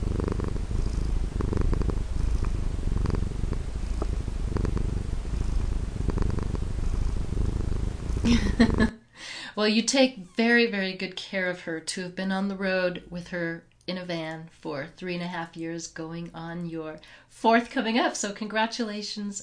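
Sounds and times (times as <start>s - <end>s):
cat purring: 0.0s - 8.9s
speech: 9.6s - 19.4s.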